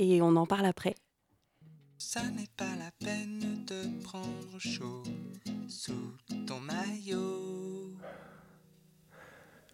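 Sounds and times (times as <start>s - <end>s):
speech: 0.0s - 1.0s, 2.0s - 8.4s
person panting out of breath after cycling: 8.0s - 9.7s.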